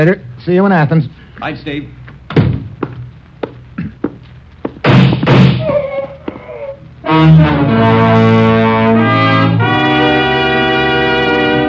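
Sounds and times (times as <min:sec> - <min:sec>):
speech: 0:00.0 - 0:02.0, 0:07.2 - 0:08.3
gunshots from a nearby room: 0:04.8 - 0:05.6
burst of noise: 0:04.8 - 0:09.5
loud sustained dramatic music: 0:07.0 - 0:11.6.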